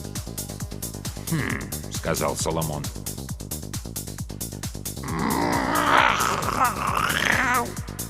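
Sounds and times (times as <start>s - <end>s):
speech: 1.3s - 3.1s, 6.6s - 7.9s
mechanical cat grunting: 5.0s - 7.8s.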